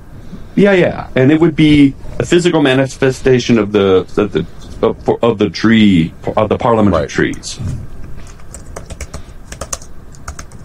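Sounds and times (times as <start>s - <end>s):
speech: 0.6s - 7.9s
notes typed on a computer keyboard: 8.3s - 10.6s.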